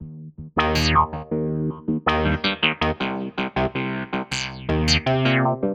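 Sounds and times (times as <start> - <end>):
filtered loop: 0.6 - 1.4, 2.1 - 3.8, 4.4 - 5.6.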